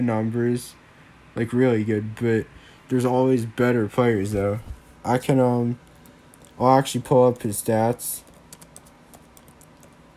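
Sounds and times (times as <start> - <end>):
speech: 0.0 - 0.8, 1.4 - 5.8, 6.6 - 8.3
low hum: 0.0 - 10.1
typing on a computer keyboard: 8.2 - 10.0.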